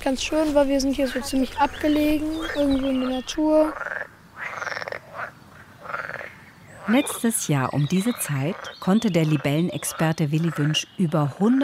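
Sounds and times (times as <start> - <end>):
speech: 0.0 - 3.9, 6.9 - 11.6
frogs croaking in reeds by the water in a remote natural spot: 0.9 - 11.6.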